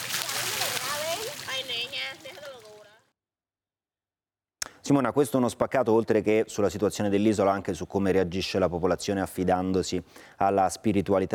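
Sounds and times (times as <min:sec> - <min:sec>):
voices including children calling and chattering: 0:00.0 - 0:03.0
water splashing and sloshing outdoors as people wash alongside horses: 0:00.0 - 0:03.1
speech: 0:04.9 - 0:11.3.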